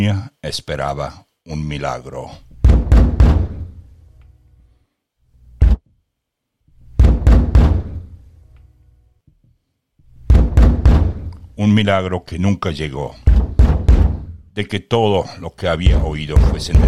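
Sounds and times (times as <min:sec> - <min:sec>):
speech: 0:00.0 - 0:02.5, 0:11.6 - 0:13.4, 0:14.6 - 0:16.8
heavy knocking on the wooden door of a house in Rome: 0:02.5 - 0:03.7, 0:07.0 - 0:08.1, 0:10.2 - 0:11.3, 0:13.2 - 0:14.4, 0:15.9 - 0:16.8.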